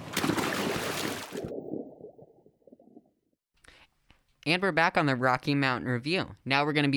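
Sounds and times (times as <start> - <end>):
loud splash of a person doing a cannonball jump into water: 0.0 - 1.8
water sloshing: 0.0 - 3.1
bubbling underwater gurgles: 0.0 - 3.4
speech: 4.4 - 6.9.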